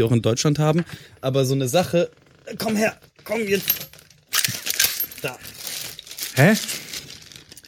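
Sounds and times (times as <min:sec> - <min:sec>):
speech: 0:00.0 - 0:04.0, 0:05.2 - 0:05.6, 0:06.4 - 0:06.8
snack packaging bag crinkling: 0:04.5 - 0:07.6.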